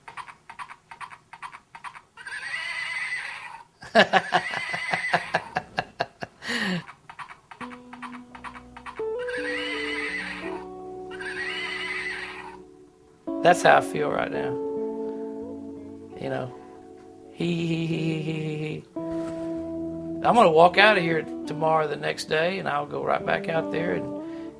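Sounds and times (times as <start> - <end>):
small toy horse giving a loud electronic-sounding neigh: 0.0 - 5.5, 6.8 - 12.6
laughter: 3.8 - 6.9
speech: 3.9 - 4.3, 13.5 - 14.6, 17.4 - 18.9, 20.2 - 24.1
tinny simple melody from a toy horse: 7.6 - 24.5.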